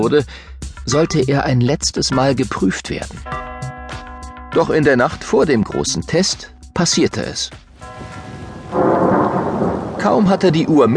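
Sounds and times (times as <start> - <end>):
speech: 0.0 - 3.4, 4.5 - 7.6, 10.0 - 10.9
heavy rain: 7.8 - 10.9
thunder rumbling: 7.8 - 10.9.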